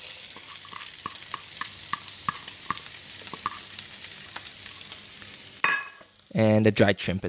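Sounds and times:
Chinese sausage and mushrooms sizzling in a pan: 0:00.0 - 0:06.4
stirring ticks in a pan: 0:00.4 - 0:05.0
speech: 0:06.4 - 0:07.2.

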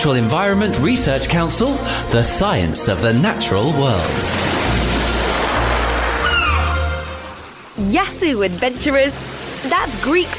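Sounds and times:
speech: 0:00.0 - 0:04.7, 0:07.8 - 0:10.3
sea water washing and sloshing: 0:03.8 - 0:10.3.

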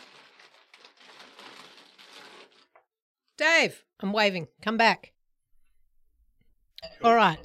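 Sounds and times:
chip bag opening, crinkling and rustling: 0:00.0 - 0:02.9
speech: 0:03.5 - 0:05.2, 0:07.0 - 0:07.4.

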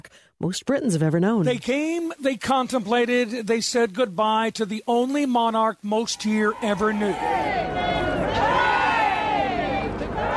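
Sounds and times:
speech: 0:00.4 - 0:08.0
murmur of the gathering: 0:06.5 - 0:10.3
large crowd singing the national anthem in unison: 0:07.2 - 0:10.3.

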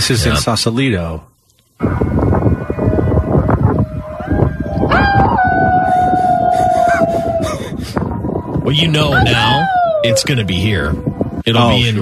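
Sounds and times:
speech: 0:00.0 - 0:02.2, 0:08.7 - 0:12.0
neighborhood crowd in Sausalito howling and whooping from homes at night: 0:01.8 - 0:11.4.

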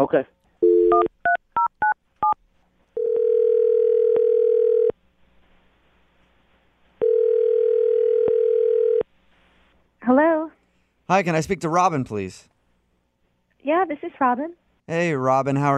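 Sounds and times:
speech: 0:00.0 - 0:01.0, 0:10.1 - 0:10.3, 0:11.1 - 0:12.5, 0:13.6 - 0:15.7
telephone ringing tone: 0:03.0 - 0:04.9, 0:07.0 - 0:09.0.

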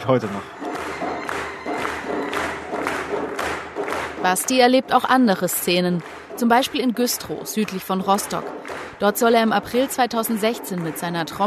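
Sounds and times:
speech: 0:00.0 - 0:00.6, 0:04.2 - 0:11.4
large crowd cheering and shouting: 0:00.0 - 0:04.7.

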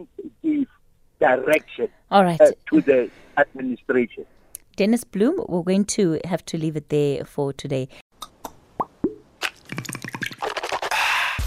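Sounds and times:
speech: 0:00.0 - 0:00.2, 0:01.2 - 0:08.0
Listerine mouthwash plopping and dripping: 0:08.4 - 0:10.8
rapid bubbly splashes and hissing slosh of mouthwash: 0:09.4 - 0:10.9.

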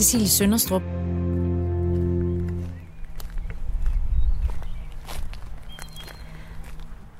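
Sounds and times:
speech: 0:00.0 - 0:01.2
sustained musical tone: 0:00.0 - 0:03.0
footsteps walking outdoors in Viby near Aarhus Denmark: 0:01.1 - 0:07.1.

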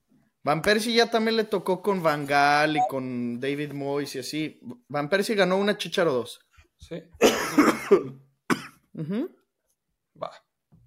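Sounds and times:
speech: 0:00.4 - 0:08.2, 0:09.0 - 0:09.4, 0:10.2 - 0:10.5
coughing fit with harsh coughs: 0:07.2 - 0:09.1.

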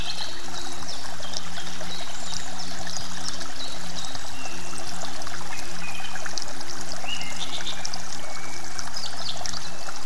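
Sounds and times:
water trickling and splashing from a small fountain beside grass: 0:00.0 - 0:10.0.

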